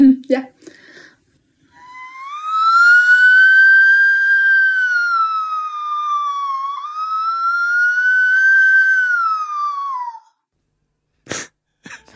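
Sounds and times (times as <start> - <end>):
voice imitating an ambulance siren: 1.8 - 10.2.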